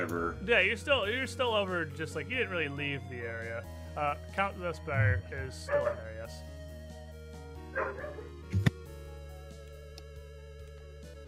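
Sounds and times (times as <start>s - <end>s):
speech: 0.0s - 6.6s
dog barking angrily: 5.7s - 6.1s, 7.8s - 8.4s.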